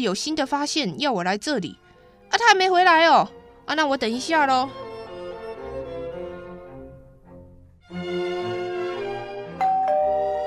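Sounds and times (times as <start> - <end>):
speech: 0.0 - 4.8
doorbell ringing with a melodic chime: 9.6 - 10.4.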